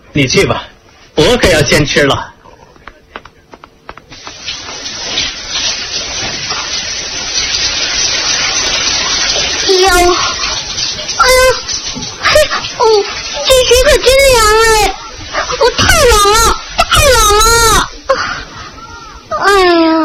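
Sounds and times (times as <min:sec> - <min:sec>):
speech: 0:00.2 - 0:02.3, 0:12.8 - 0:15.0
shower water spraying: 0:04.0 - 0:19.9.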